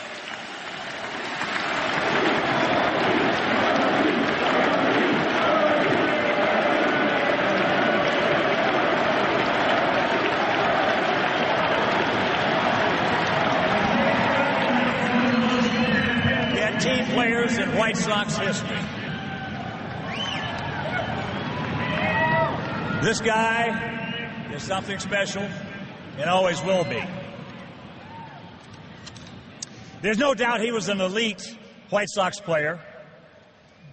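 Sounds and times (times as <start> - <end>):
large ballpark crowd applauding and cheering at a number-retirement ceremony: 0.0 - 25.0
speech: 17.4 - 18.8, 23.0 - 24.0, 24.6 - 25.6, 26.2 - 27.2, 30.0 - 32.9.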